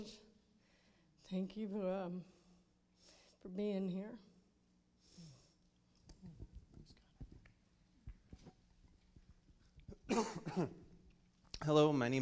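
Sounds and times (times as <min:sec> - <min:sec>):
speech: 0:00.0 - 0:00.2, 0:01.3 - 0:02.4, 0:03.4 - 0:04.3, 0:10.1 - 0:10.8, 0:11.6 - 0:12.1
harsh cough: 0:09.9 - 0:10.9.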